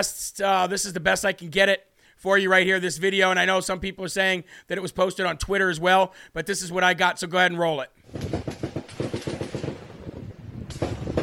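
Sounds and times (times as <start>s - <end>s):
speech: 0.0s - 8.5s
gunfire bursts in Texas and Mexico: 8.1s - 11.2s.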